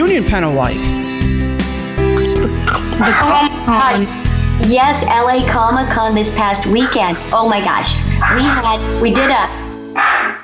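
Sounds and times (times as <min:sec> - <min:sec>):
speech: 0:00.1 - 0:01.4, 0:02.4 - 0:10.1
male dog barking: 0:03.0 - 0:04.1, 0:06.7 - 0:07.2, 0:08.2 - 0:10.4.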